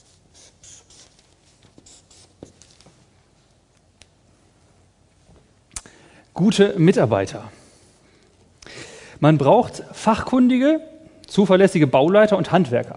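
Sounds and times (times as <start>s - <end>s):
handwriting scratching: 0.0s - 2.6s
speech: 6.4s - 7.6s, 9.2s - 12.9s.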